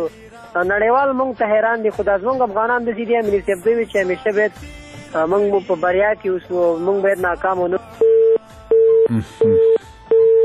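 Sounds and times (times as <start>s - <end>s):
speech: 0.0s - 8.0s, 9.1s - 9.7s
telephone busy signal beeps after a dropped call: 8.0s - 10.4s.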